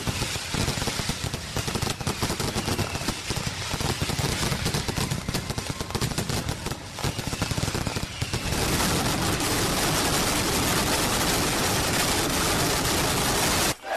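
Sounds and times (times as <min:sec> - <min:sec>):
mascletà firecracker barrage exploding in Madrid: 0:00.0 - 0:13.8.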